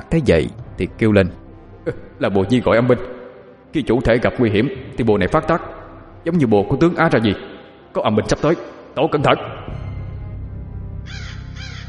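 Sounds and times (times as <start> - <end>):
speech: 0.1 - 9.8
black crows cawing at a forest edge: 11.0 - 11.8.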